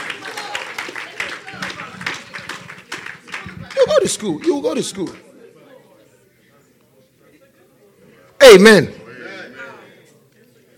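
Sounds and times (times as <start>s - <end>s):
audience clapping: 0.0s - 5.3s
speech: 4.0s - 5.3s, 8.5s - 9.0s.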